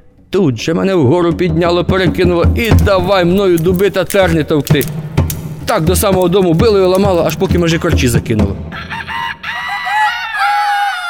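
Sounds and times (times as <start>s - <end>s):
speech: 0.3s - 5.0s, 5.7s - 9.1s
rooster crowing: 8.7s - 11.0s.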